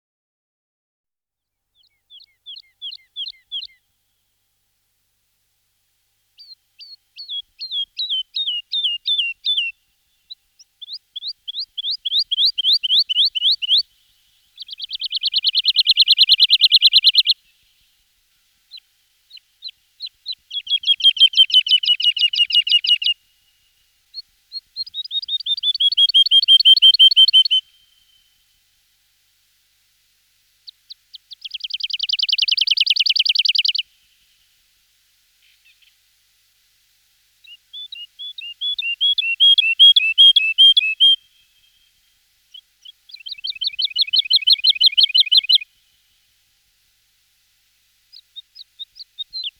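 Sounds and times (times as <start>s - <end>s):
woodlark singing: 1.8s - 3.8s, 6.4s - 17.7s, 18.7s - 23.2s, 24.1s - 28.3s, 30.7s - 34.0s, 37.4s - 41.9s, 42.5s - 45.7s, 48.1s - 49.5s.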